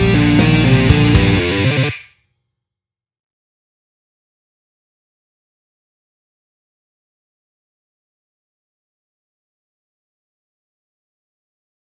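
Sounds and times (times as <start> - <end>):
guitar solo: 0.1 - 2.0.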